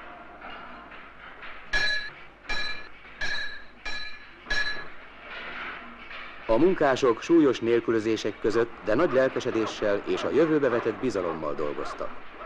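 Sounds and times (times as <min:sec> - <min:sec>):
metal clinking in a tram car repair workshop in Budapest: 0:00.4 - 0:06.4
speech: 0:06.5 - 0:12.4.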